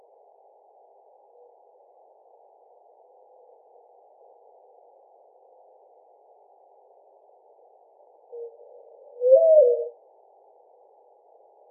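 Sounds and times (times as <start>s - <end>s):
mourning dove cooing: 8.4s - 10.0s.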